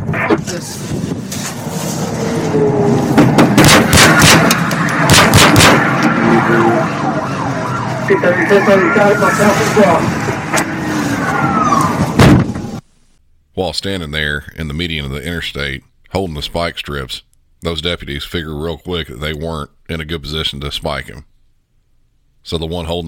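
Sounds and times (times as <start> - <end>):
emergency sirens wailing: 2.0 - 12.8
gunshots fired by a suspect at deputies during a pursuit: 3.3 - 6.3
speech: 8.1 - 10.3, 13.6 - 21.3, 22.4 - 23.0.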